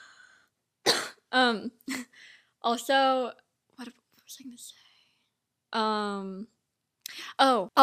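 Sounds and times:
person coughing and choking on breath: 0.9 - 1.3
speech: 1.3 - 4.8, 5.7 - 7.8.

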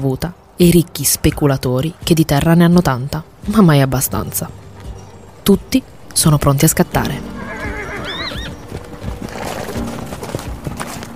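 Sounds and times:
speech: 0.0 - 4.6, 5.5 - 7.4
busy outdoor background: 0.0 - 11.1
horse hooves clip-clopping on hard ground: 1.2 - 11.1
horse ridden by a soldier whinnying: 7.2 - 8.7.

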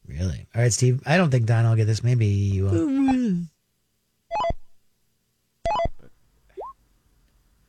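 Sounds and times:
speech: 0.6 - 3.5
Japanese virtual pet toy beeping: 4.3 - 4.7, 5.6 - 6.0.

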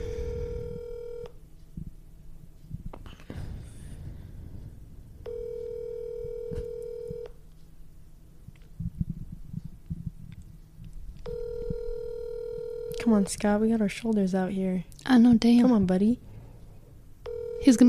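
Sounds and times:
phone line ringing with a steady electronic tone: 0.0 - 1.4, 5.2 - 7.4, 11.2 - 13.3, 17.2 - 17.8
low rumble of noise: 0.0 - 17.8
speech: 13.1 - 16.3, 17.6 - 17.8.

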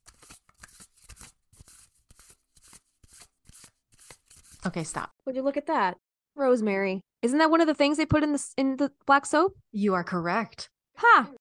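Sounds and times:
oracle card deck being shuffled: 0.0 - 5.1
speech: 4.6 - 11.3.

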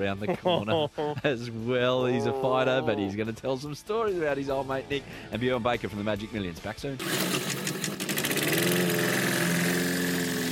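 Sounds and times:
speech: 0.0 - 7.9
laughter: 0.2 - 1.5, 2.1 - 3.1
small lawn mower engine starting and idling: 7.0 - 10.5.

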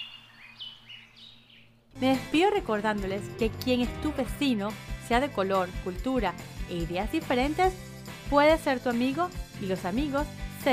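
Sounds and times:
birds chirping and warbling: 0.0 - 1.9
speech: 2.0 - 10.7.

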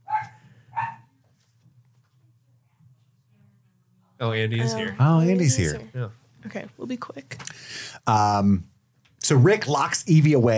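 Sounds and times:
dog barking: 0.0 - 1.1
speech: 4.2 - 10.5.

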